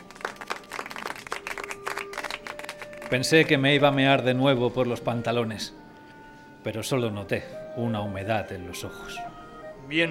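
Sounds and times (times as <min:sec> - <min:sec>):
group applauding to welcome a new member: 0:00.0 - 0:03.6
speech: 0:03.1 - 0:05.8, 0:06.6 - 0:09.3, 0:09.9 - 0:10.1.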